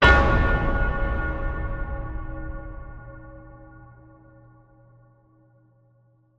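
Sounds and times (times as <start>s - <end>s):
death bell tolling slowly: 0.0s - 4.5s.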